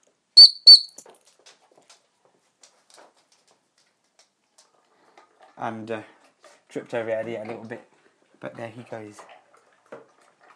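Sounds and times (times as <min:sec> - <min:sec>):
training whistle blasts: 0:00.4 - 0:01.0
speech: 0:05.6 - 0:06.2, 0:06.8 - 0:09.3.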